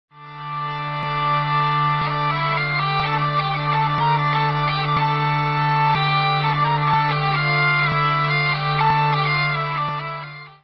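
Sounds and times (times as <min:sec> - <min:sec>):
hurdy-gurdy: 0:00.1 - 0:10.6.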